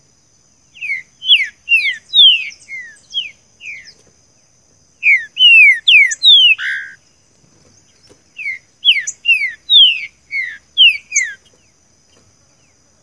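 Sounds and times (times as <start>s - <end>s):
green-winged saltator singing sweet descending whistles: 0.8s - 4.0s, 5.0s - 7.0s, 8.4s - 11.4s.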